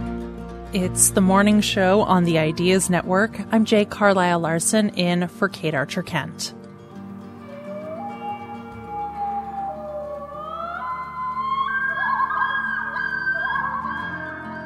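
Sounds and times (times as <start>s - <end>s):
speech: 0.7s - 6.6s
common loon wailing: 7.4s - 14.6s.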